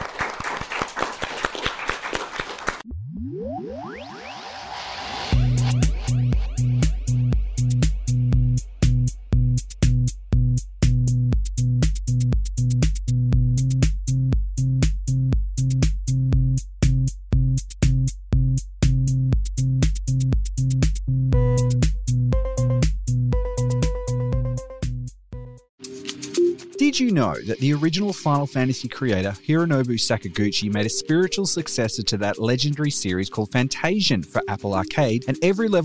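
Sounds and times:
audience applause for panelists: 0.0s - 2.8s
rising synth sweep: 2.8s - 8.0s
pulsing beat-driven music track: 5.3s - 35.8s
speech: 27.2s - 35.8s.

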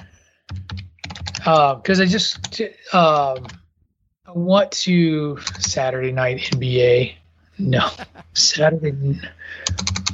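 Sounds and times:
clicking keys on a computer keyboard: 0.5s - 2.6s, 3.2s - 3.6s, 5.4s - 5.8s, 9.6s - 10.1s
speech: 1.4s - 3.6s, 4.3s - 10.0s.

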